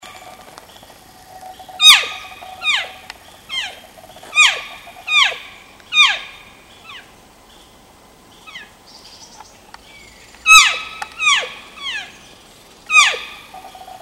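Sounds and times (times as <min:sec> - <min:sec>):
elk calf calling while seeking and leaving: 0:01.2 - 0:07.1, 0:10.5 - 0:12.1, 0:12.9 - 0:14.0.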